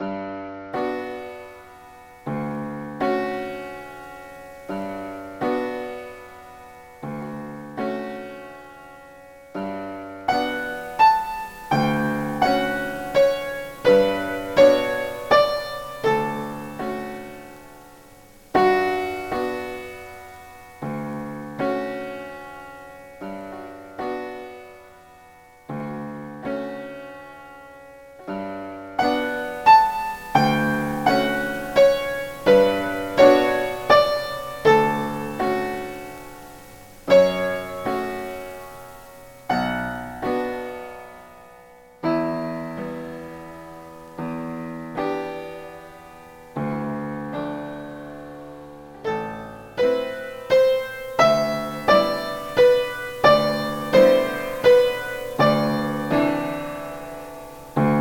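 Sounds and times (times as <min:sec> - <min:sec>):
piano: 0:00.0 - 0:57.9.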